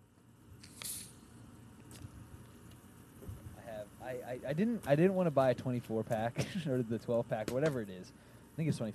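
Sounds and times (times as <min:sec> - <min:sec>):
soda bottle twisting open with hiss of escaping gas: 0:00.6 - 0:02.1
speech: 0:04.1 - 0:08.9.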